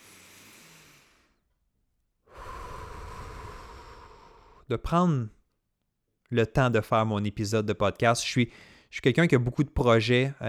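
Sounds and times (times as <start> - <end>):
deep breath drawn in: 0.0 - 1.4, 2.3 - 4.7
speech: 4.7 - 5.4, 6.3 - 10.4.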